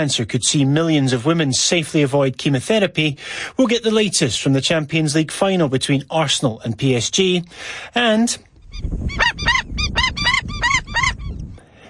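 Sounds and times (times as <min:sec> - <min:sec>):
speech: 0:00.0 - 0:09.7
Indian skimmer harsh nasal yapping calls: 0:08.7 - 0:11.4.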